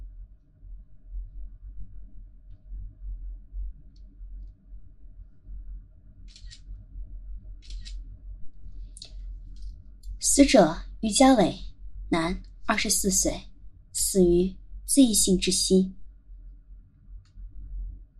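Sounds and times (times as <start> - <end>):
constant low hum: 0.0 - 18.1
camera shutter clicks taking photos for sampling: 6.3 - 6.6, 7.6 - 8.0
speech: 10.4 - 16.0.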